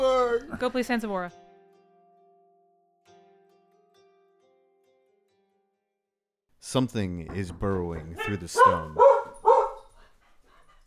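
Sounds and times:
speech: 0:00.4 - 0:01.4, 0:06.7 - 0:09.2
single sharp dog bark: 0:08.2 - 0:09.9.

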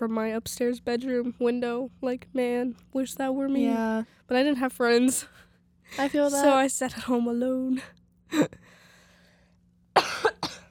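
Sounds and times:
speech: 0:00.0 - 0:08.6
person coughing: 0:10.0 - 0:10.6.

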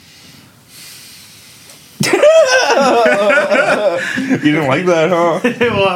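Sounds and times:
sharp, hissing intake of breath: 0:00.0 - 0:02.0
laughter: 0:02.0 - 0:05.9
speech: 0:03.8 - 0:05.9.

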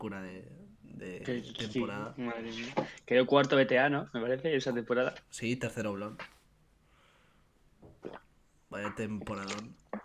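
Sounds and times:
speech: 0:00.0 - 0:06.4, 0:08.0 - 0:10.0
person gulping drinking water: 0:07.8 - 0:10.0.

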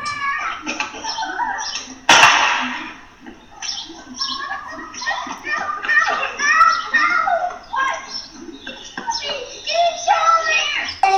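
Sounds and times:
children chattering and calling out outdoors on a Saturday afternoon: 0:00.0 - 0:11.1
laughter: 0:00.0 - 0:11.1
sharp gunshot: 0:02.1 - 0:03.0.

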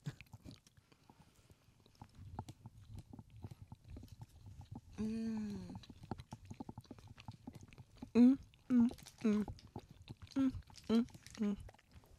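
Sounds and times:
soft wet chewing of dense sticky Niederegger marzipan: 0:00.0 - 0:12.1
short hummed vocal sounds of enjoyment: 0:05.0 - 0:05.8, 0:08.2 - 0:09.5.

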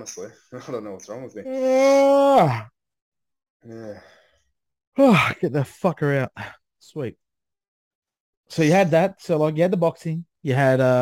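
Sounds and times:
speech: 0:00.0 - 0:02.8, 0:03.6 - 0:04.2, 0:05.0 - 0:07.2, 0:08.5 - 0:11.0
person yawning: 0:01.5 - 0:02.7.

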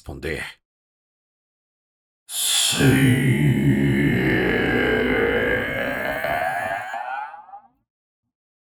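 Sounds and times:
speech: 0:00.0 - 0:00.6, 0:02.3 - 0:04.3
deep distorted monstrous voice with layered echoes: 0:02.3 - 0:07.7.

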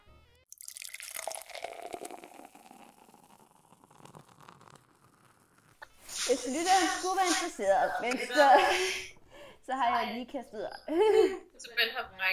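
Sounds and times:
schnapps pouring into glasses: 0:00.5 - 0:07.5
speech: 0:06.3 - 0:09.1, 0:09.7 - 0:12.3.

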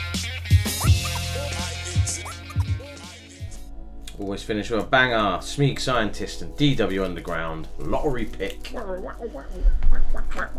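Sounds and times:
voice imitating DJ record scratching: 0:00.2 - 0:03.1, 0:08.7 - 0:10.5
speech: 0:04.3 - 0:10.5.

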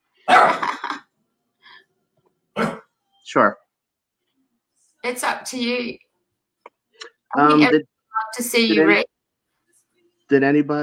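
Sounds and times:
dog barking: 0:00.2 - 0:00.7
speech: 0:03.3 - 0:03.6, 0:05.1 - 0:06.0, 0:07.0 - 0:09.1, 0:10.3 - 0:10.8.

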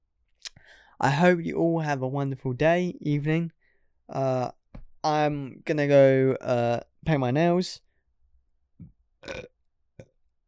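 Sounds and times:
speech: 0:01.0 - 0:07.8
person burping: 0:09.2 - 0:10.1.

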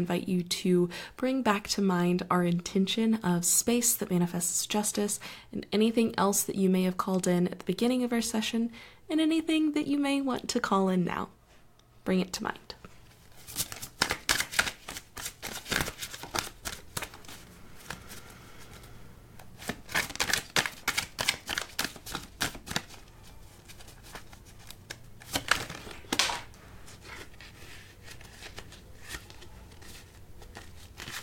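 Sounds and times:
speech: 0:00.0 - 0:11.4, 0:12.0 - 0:12.7
deck of tarot cards being shuffled: 0:13.2 - 0:31.2.

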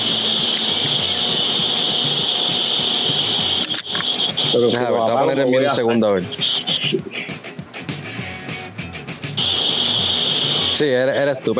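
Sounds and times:
electric fans whirring in a shop: 0:00.0 - 0:11.5
speech: 0:04.6 - 0:07.2, 0:10.8 - 0:11.5.

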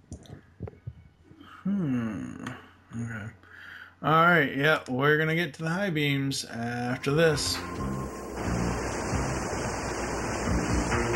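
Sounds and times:
speech: 0:01.6 - 0:08.0
roar of rushing water like a waterfall: 0:07.6 - 0:11.1.

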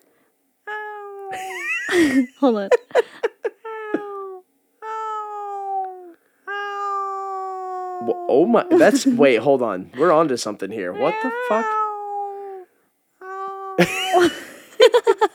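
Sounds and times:
person imitating a cat meow: 0:00.7 - 0:01.9, 0:03.3 - 0:09.2, 0:10.9 - 0:14.2
speech: 0:01.3 - 0:03.1, 0:08.0 - 0:11.8, 0:13.8 - 0:14.4
laughter: 0:01.3 - 0:04.1, 0:08.7 - 0:10.3, 0:13.8 - 0:15.3.

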